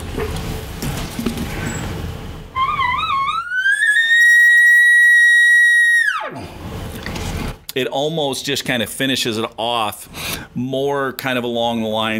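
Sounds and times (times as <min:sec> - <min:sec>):
cow elk bugle: 0:02.6 - 0:06.4
speech: 0:07.8 - 0:12.1.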